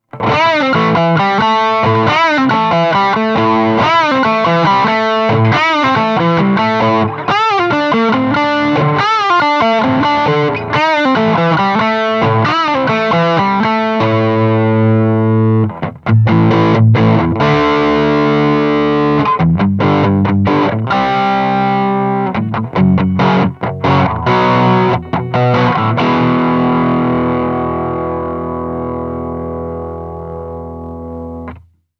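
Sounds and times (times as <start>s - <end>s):
distorted guitar: 0.0s - 31.8s.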